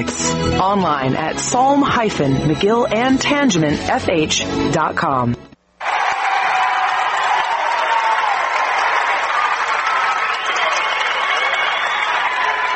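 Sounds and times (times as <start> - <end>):
speech: 0.0 - 5.4
school cheering sections cheering at game: 5.8 - 12.7.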